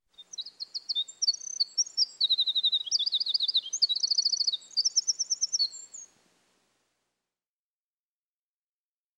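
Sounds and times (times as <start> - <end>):
wren singing: 0.1 - 6.1.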